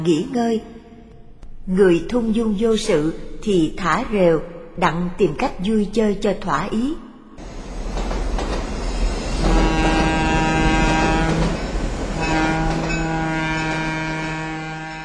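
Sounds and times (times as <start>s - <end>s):
speech: 0.0s - 0.8s, 1.7s - 7.0s
trains arriving, rumbling: 7.4s - 15.0s
long sustained train horn blasts: 9.4s - 15.0s.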